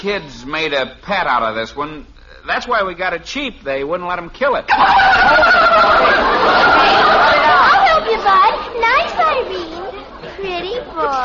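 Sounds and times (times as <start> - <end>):
speech: 0.0 - 7.4
turkey gobbling: 4.7 - 8.0
laughter: 4.7 - 11.2.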